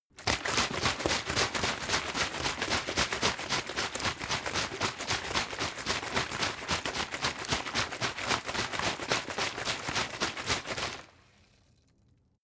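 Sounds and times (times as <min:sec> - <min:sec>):
water bottle shaking sparsely: 0:00.1 - 0:11.2.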